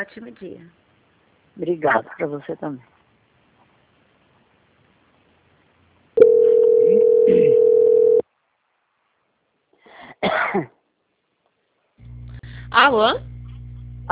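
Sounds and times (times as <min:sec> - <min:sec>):
speech: 0:00.0 - 0:00.8, 0:01.6 - 0:03.0, 0:10.2 - 0:10.8, 0:12.7 - 0:13.3
telephone line tone while a call is transferred: 0:06.2 - 0:08.2.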